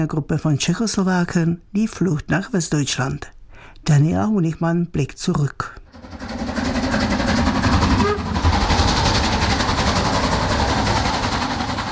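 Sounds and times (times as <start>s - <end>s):
speech: 0.0s - 6.2s
steam locomotive passenger train running on rails from Prague to Cheb: 5.9s - 11.9s.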